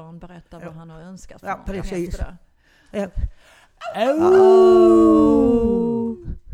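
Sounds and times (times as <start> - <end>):
speech: 0.1 - 5.7
group of people howling in imitation of wolves: 3.8 - 6.3.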